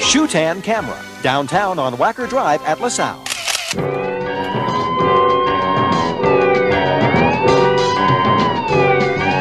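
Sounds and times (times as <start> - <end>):
speech: 0.1 - 4.2
several emergency sirens wailing: 3.8 - 9.3.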